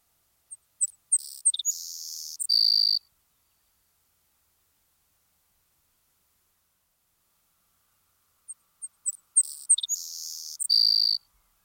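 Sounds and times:
savanna sparrow singing buzzy trill: 0:00.5 - 0:03.1, 0:08.5 - 0:11.6.

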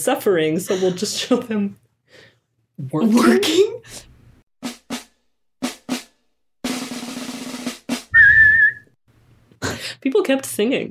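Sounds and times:
speech: 0:00.0 - 0:04.1, 0:10.2 - 0:10.8
group whistling a march-like tune: 0:08.1 - 0:09.0.

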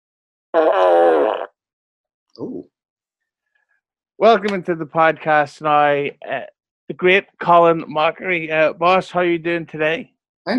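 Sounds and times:
fart: 0:00.6 - 0:01.6
speech: 0:02.4 - 0:02.7, 0:04.2 - 0:10.5.

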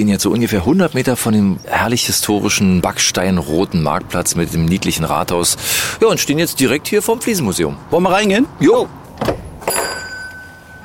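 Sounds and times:
speech: 0:00.0 - 0:09.0
door clunking open: 0:09.0 - 0:10.2
knocks: 0:09.2 - 0:10.1
small bell above a door jingling: 0:09.6 - 0:10.8.

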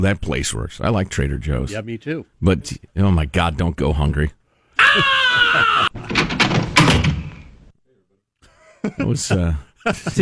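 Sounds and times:
speech: 0:00.0 - 0:06.2, 0:08.8 - 0:10.1
loud shrill scream: 0:04.8 - 0:06.0
door clattering and creaking open: 0:05.9 - 0:07.7.

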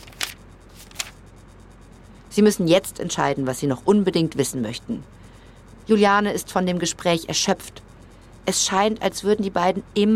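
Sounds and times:
notebook pages flipping: 0:00.0 - 0:01.2
speech: 0:02.4 - 0:05.2, 0:05.9 - 0:07.8, 0:08.5 - 0:10.1.

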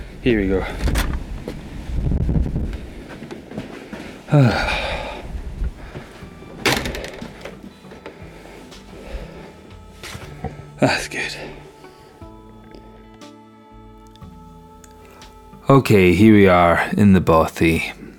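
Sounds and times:
wind gusting outdoors and buffeting a microphone: 0:00.0 - 0:03.7, 0:04.7 - 0:06.2
speech: 0:00.2 - 0:01.0, 0:04.3 - 0:04.8, 0:10.8 - 0:11.4, 0:15.7 - 0:18.0.

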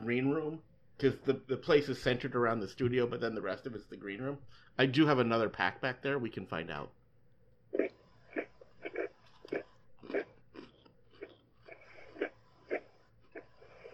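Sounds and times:
speech: 0:00.0 - 0:07.0
crunchy gingerbread-flavoured cookies being bitten and chewed: 0:07.8 - 0:13.9.

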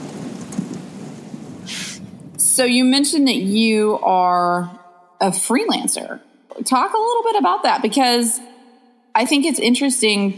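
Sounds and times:
rain hissing: 0:00.0 - 0:02.7
low rolling thunder: 0:00.0 - 0:03.0
speech: 0:02.6 - 0:08.5, 0:09.2 - 0:10.3.

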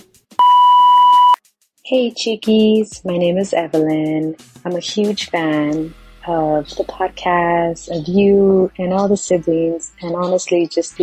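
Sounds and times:
voicemail electronic beep tone: 0:00.4 - 0:01.4
speech: 0:01.9 - 0:11.0.

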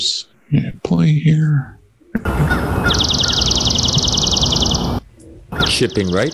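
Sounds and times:
speech: 0:00.0 - 0:01.8, 0:05.8 - 0:06.3
hiss: 0:00.0 - 0:06.3
swamp sparrow singing a rapid staccato trill: 0:02.1 - 0:06.3.

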